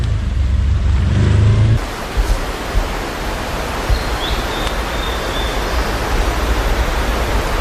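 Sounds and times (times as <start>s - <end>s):
off-road vehicle engine rumbling: 0.0s - 1.9s
steady loud rushing wash of noise: 0.0s - 7.6s.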